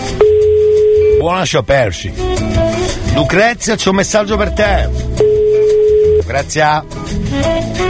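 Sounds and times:
jumble of electronic tones: 0:00.2 - 0:01.2, 0:05.2 - 0:06.4
telephone ringback tone: 0:00.2 - 0:01.2, 0:05.2 - 0:06.3
speech: 0:01.4 - 0:05.4, 0:06.3 - 0:07.7.

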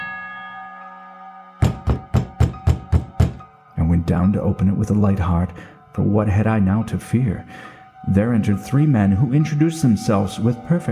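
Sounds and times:
bell tone sounding the hour: 0:00.0 - 0:03.5
firm knocks on a wooden street door: 0:01.6 - 0:03.4
speech: 0:04.1 - 0:10.9.

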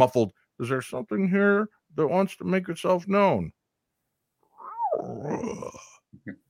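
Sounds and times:
speech: 0:00.0 - 0:03.6, 0:05.2 - 0:06.4
stomach growling on a paranormal team's recording: 0:04.6 - 0:06.4.

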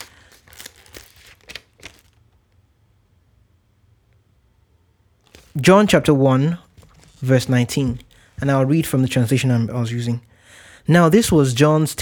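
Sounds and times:
book being opened with pages rustling: 0:00.0 - 0:02.4, 0:05.2 - 0:05.7, 0:06.6 - 0:08.6
speech: 0:05.6 - 0:06.6, 0:07.2 - 0:10.3, 0:10.9 - 0:12.0.

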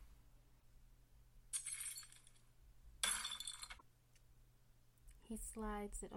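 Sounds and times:
low steady hum: 0:00.0 - 0:06.1
glass shards tinkling: 0:01.5 - 0:02.4, 0:03.0 - 0:03.8
glass bottle smashing on a kitchen table: 0:01.6 - 0:02.4, 0:03.0 - 0:03.8
speech: 0:05.3 - 0:06.1.

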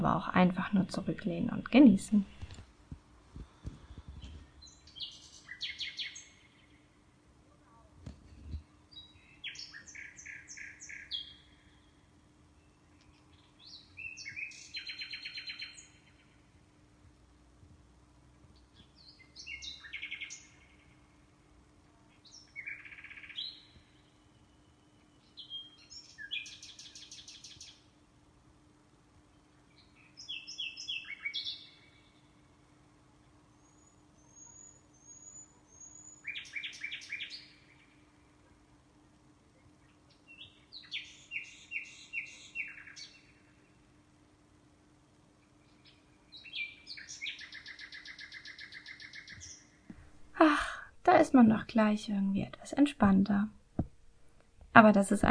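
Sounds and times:
speech: 0:00.0 - 0:02.4, 0:51.4 - 0:53.6, 0:54.8 - 0:55.2
common nightingale singing: 0:03.9 - 0:06.8, 0:08.9 - 0:16.4, 0:18.6 - 0:21.0, 0:22.1 - 0:27.8, 0:29.3 - 0:32.2, 0:33.6 - 0:38.3, 0:39.8 - 0:43.8, 0:45.4 - 0:49.8.

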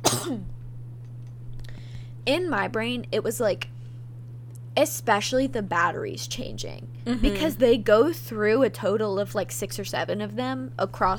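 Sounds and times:
person coughing: 0:00.0 - 0:00.5
steady low electrical hum: 0:00.0 - 0:11.1
speech: 0:00.1 - 0:00.6, 0:02.3 - 0:03.7, 0:04.8 - 0:11.1.

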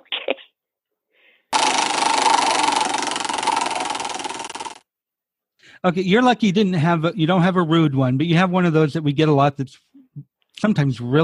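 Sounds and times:
prize wheel spinning: 0:01.6 - 0:04.8
speech: 0:05.8 - 0:11.2.

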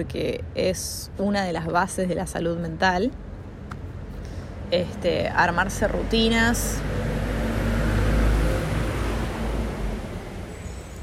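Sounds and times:
speech: 0:00.0 - 0:03.2, 0:04.7 - 0:07.1
broadband road noise: 0:00.0 - 0:11.0
large vehicle passing, possibly garbage truck: 0:05.7 - 0:11.0.

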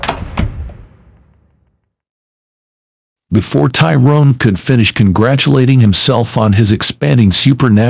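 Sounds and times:
bedroom door slamming shut: 0:00.0 - 0:01.7
speech: 0:03.3 - 0:07.8.

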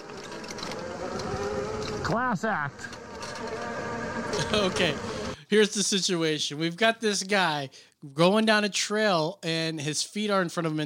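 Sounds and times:
motorcycle engines droning in a played video: 0:00.0 - 0:05.4
speech: 0:02.1 - 0:10.8.

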